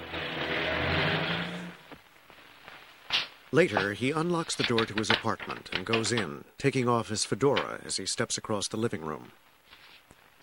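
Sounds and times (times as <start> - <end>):
car pulling away: 0.0 - 1.8
speech: 3.5 - 9.5.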